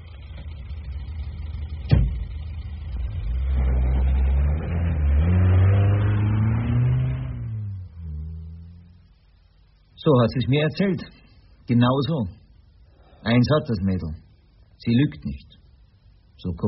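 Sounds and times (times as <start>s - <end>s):
car engine revving as it drives off: 0.0s - 9.4s
thud: 1.8s - 2.4s
speech: 10.0s - 12.4s, 13.2s - 14.2s, 14.8s - 15.6s, 16.4s - 16.6s.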